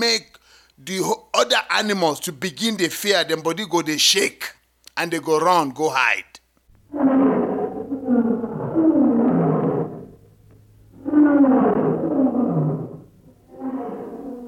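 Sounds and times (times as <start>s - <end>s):
speech: 0.0s - 6.4s
faint low hum: 0.0s - 14.4s
lion roaring: 6.9s - 14.4s.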